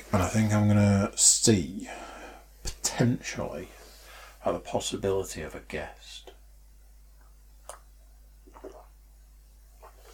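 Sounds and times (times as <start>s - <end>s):
speech: 0.1s - 2.1s, 3.0s - 3.8s, 4.4s - 6.3s
slurping sips of water: 7.7s - 9.0s, 9.8s - 10.1s.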